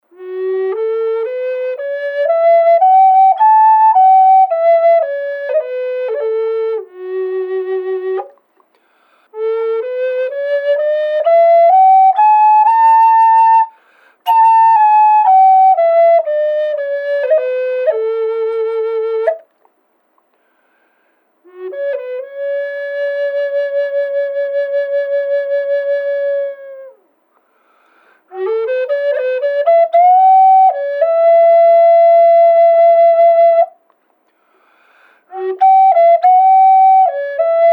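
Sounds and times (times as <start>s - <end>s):
palo santo flutes playing in F sharp minor: 0.0s - 8.4s, 9.2s - 19.5s, 21.4s - 27.1s, 28.3s - 33.8s, 35.3s - 37.7s.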